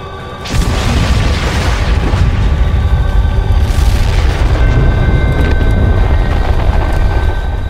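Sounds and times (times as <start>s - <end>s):
massive explosion at the port of Nakhodka: 0.4s - 5.5s
crackling debris: 0.4s - 7.6s.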